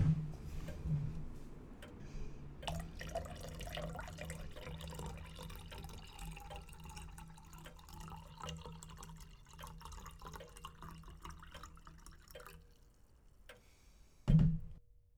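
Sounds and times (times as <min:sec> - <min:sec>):
faint ticking: 0:00.6 - 0:14.0
brandy trickling into a glass: 0:02.6 - 0:13.5.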